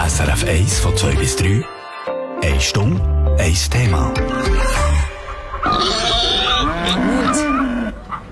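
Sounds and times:
speech: 0:00.1 - 0:01.8, 0:02.4 - 0:04.9, 0:05.6 - 0:07.5
pig grunting: 0:05.7 - 0:08.1.

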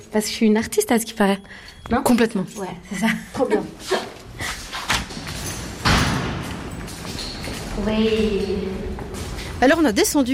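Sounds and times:
speech: 0:00.0 - 0:04.1, 0:07.8 - 0:09.0, 0:09.6 - 0:10.3
door opening with heavy thud: 0:04.8 - 0:09.9.

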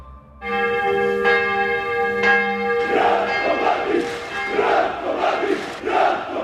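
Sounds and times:
church bell tolling: 0:00.4 - 0:06.4
crowd rhythmic shouting at a funeral: 0:02.6 - 0:06.4
voices of a large crowd gathered in Belgrade for a funeral: 0:02.8 - 0:06.4.

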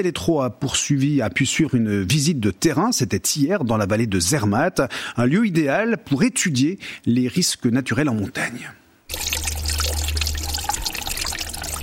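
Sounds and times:
speech: 0:00.0 - 0:09.4
mountain stream trickling over stones: 0:09.1 - 0:11.8.

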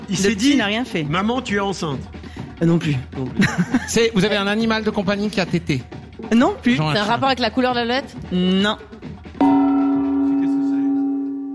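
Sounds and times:
speech: 0:00.1 - 0:09.6
laughter: 0:03.4 - 0:04.2
gong struck during a panel game show: 0:09.4 - 0:11.5.

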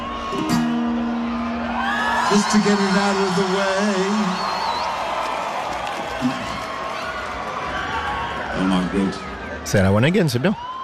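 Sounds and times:
large concert crowd roaring and cheering: 0:00.0 - 0:10.8
speech: 0:00.3 - 0:00.6, 0:02.3 - 0:04.7, 0:08.6 - 0:10.7
whistle: 0:04.2 - 0:04.9.

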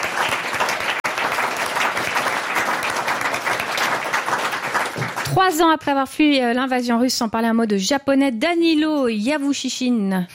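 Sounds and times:
sizable crowd applauding: 0:00.0 - 0:05.6
speech: 0:05.3 - 0:10.3.

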